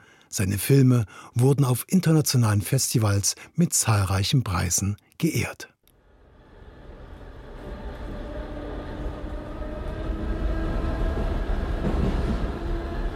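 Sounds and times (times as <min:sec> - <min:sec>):
speech: 0:00.3 - 0:05.7
S-Bahn commuter train rumbling in motion, heard from inside the carriage: 0:06.0 - 0:13.1.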